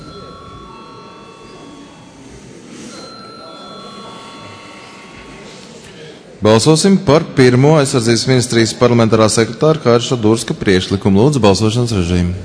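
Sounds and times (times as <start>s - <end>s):
parliamentary voting bell ringing with shrill electric tone: 0.0s - 6.2s
low murmur of people talking in a parliamentary chamber: 0.0s - 12.4s
speech: 6.4s - 12.4s.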